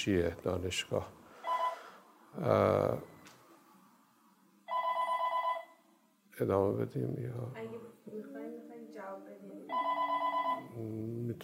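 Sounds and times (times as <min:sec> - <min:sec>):
speech: 0:00.0 - 0:01.2, 0:02.4 - 0:03.1, 0:06.4 - 0:10.2, 0:10.8 - 0:11.4
cordless telephone handset ring tone: 0:01.4 - 0:02.0, 0:04.7 - 0:05.8, 0:09.7 - 0:10.8.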